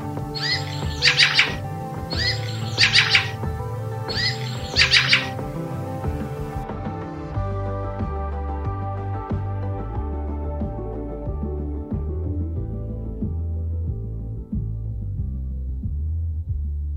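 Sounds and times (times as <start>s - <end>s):
fieldfare chattering calls: 0.0s - 6.6s
loud background music: 0.0s - 16.8s.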